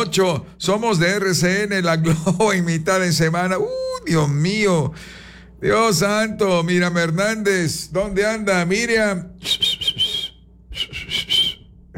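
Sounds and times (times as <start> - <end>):
speech: 0.0 - 9.7
person whistling: 9.4 - 11.9.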